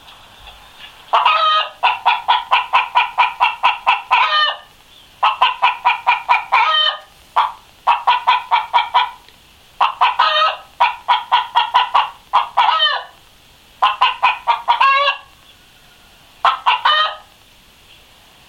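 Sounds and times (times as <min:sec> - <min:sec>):
short egg cackle of a hen: 0:00.4 - 0:13.2, 0:13.8 - 0:17.4.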